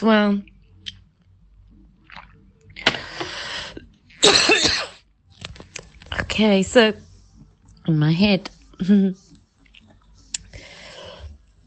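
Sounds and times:
speech: 0:00.0 - 0:00.5, 0:06.4 - 0:07.1, 0:07.9 - 0:09.2
breathing: 0:02.9 - 0:03.8, 0:10.5 - 0:11.4
person coughing harshly: 0:04.2 - 0:05.0.

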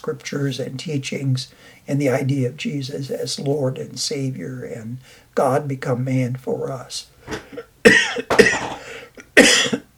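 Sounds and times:
speech: 0:00.0 - 0:07.7
person coughing: 0:07.3 - 0:09.9.

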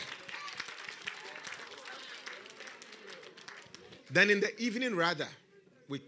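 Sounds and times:
crowd clapping: 0:00.0 - 0:04.4
speech: 0:04.1 - 0:06.0.

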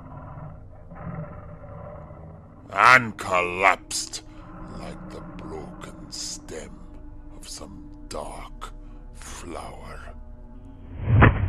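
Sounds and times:
monstrous creature's last roar: 0:00.0 - 0:06.9
speech: 0:02.7 - 0:04.3, 0:07.4 - 0:08.6, 0:09.4 - 0:10.2.

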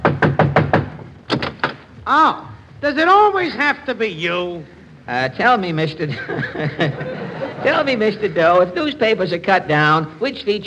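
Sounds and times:
sharp knocks on a door: 0:00.0 - 0:02.7
speech: 0:02.1 - 0:10.6
laughter: 0:06.0 - 0:08.8.

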